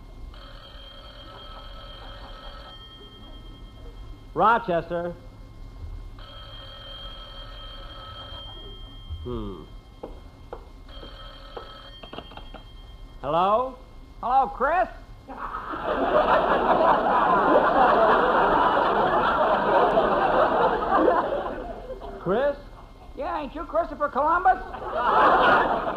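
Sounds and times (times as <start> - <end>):
old-fashioned telephone bell ringing in a house in Beverly Hills: 0.3 - 4.2, 6.2 - 9.2, 10.9 - 13.2
speech: 4.4 - 5.3, 9.2 - 9.8, 13.2 - 18.2, 22.2 - 22.6, 23.2 - 25.9
laughter: 15.3 - 22.3, 24.6 - 25.9.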